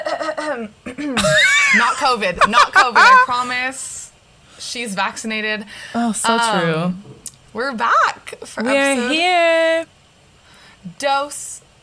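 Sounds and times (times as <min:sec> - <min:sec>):
throat clearing cough: 0:00.0 - 0:01.5
speech: 0:00.6 - 0:04.0, 0:04.6 - 0:09.9, 0:10.8 - 0:11.6
laughter: 0:01.2 - 0:03.6.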